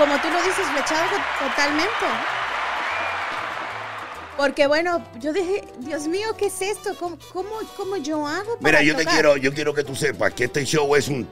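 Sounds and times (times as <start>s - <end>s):
speech: 0.0s - 2.4s, 4.4s - 11.3s
applause from a small group: 0.0s - 4.5s.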